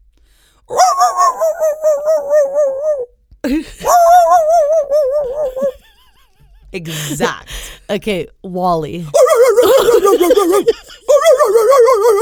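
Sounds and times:
person imitating a dog bark with wavering yelps: 0.7 - 5.9, 9.1 - 12.1
laughter: 3.4 - 7.6, 9.1 - 12.1
speech: 6.8 - 9.2, 9.8 - 10.8.

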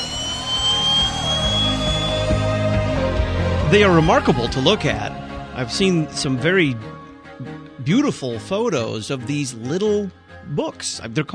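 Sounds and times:
jet aircraft engine roar: 0.0 - 5.5
speech: 3.7 - 11.3.

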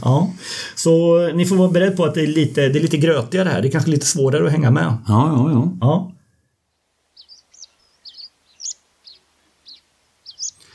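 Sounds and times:
speech: 0.0 - 6.1
faint hiss: 0.0 - 10.7
horned lark calls overhead: 7.1 - 10.7.

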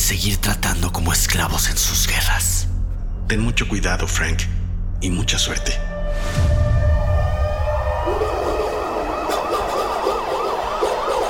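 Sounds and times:
speech: 0.1 - 2.7, 3.3 - 6.5
sirens wailing at night: 7.0 - 11.2.

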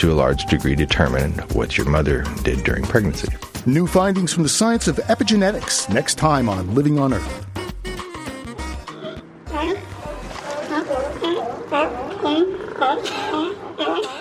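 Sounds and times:
speech: 0.0 - 7.5
California sea lions barking, belching, coughing and sneezing at a floating pier: 7.6 - 14.2.

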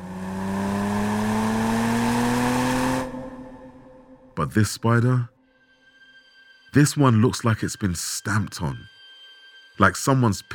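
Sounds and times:
powerful sports car engine roaring and revving: 0.0 - 4.4
speech: 4.4 - 5.3, 6.8 - 8.9, 9.8 - 10.5.

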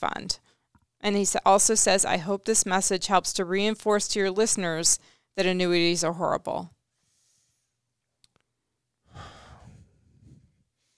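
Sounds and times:
speech: 0.0 - 6.8
deep breath exhale: 9.1 - 10.6.

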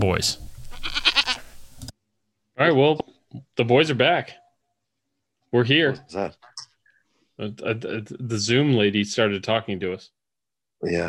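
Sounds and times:
speech: 0.0 - 1.1, 2.6 - 4.4, 5.5 - 6.5, 7.4 - 10.2, 10.8 - 11.0
goat bleating with a quavering tremble: 0.7 - 1.6.

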